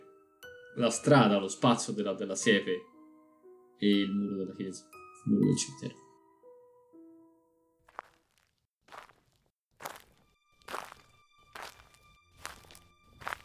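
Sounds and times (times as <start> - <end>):
speech: 0.8 - 2.9, 3.8 - 6.0
footsteps crunching along a white stone path at night: 7.8 - 13.4.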